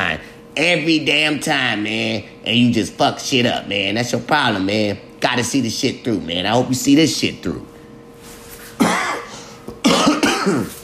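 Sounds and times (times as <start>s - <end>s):
speech: 0.6s - 7.7s
harsh loud coughs: 8.8s - 10.8s.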